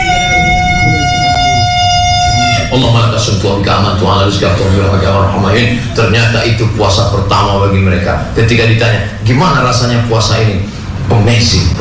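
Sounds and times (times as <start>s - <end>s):
loud siren signalling the breaking of the fast: 0.0s - 3.2s
low rumble: 0.0s - 11.7s
speech: 2.8s - 11.7s.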